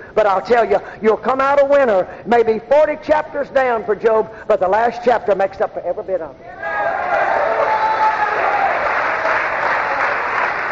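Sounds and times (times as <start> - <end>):
speech: 0.2 - 7.0
audience clapping hands in sustained applause: 7.1 - 10.6.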